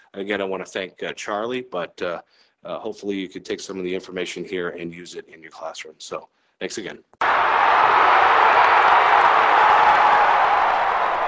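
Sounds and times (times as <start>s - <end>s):
speech: 0.1s - 8.3s
crowd cheering and applauding: 7.2s - 11.2s.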